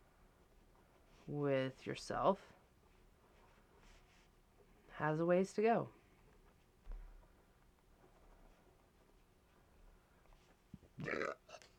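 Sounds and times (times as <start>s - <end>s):
low noise: 0.0s - 11.7s
speech: 1.3s - 2.6s, 5.0s - 6.0s
loud guttural burp: 11.0s - 11.7s.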